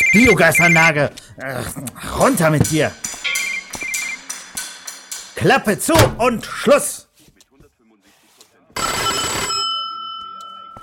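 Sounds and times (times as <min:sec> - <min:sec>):
speech: 0:00.1 - 0:03.2, 0:05.4 - 0:07.0
bright electronic doorbell ringing: 0:08.8 - 0:10.8.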